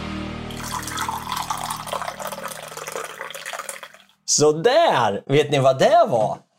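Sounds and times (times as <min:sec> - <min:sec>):
coffee pouring into a cup: 0:00.5 - 0:04.2
speech: 0:04.4 - 0:06.5.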